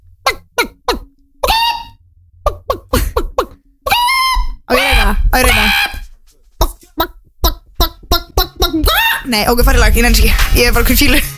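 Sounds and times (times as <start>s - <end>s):
hen clucking: 0.3s - 9.4s
speech: 9.3s - 11.2s.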